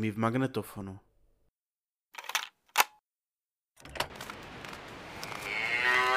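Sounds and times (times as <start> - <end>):
speech: 0.0 - 1.1
bull bellowing: 5.4 - 6.1.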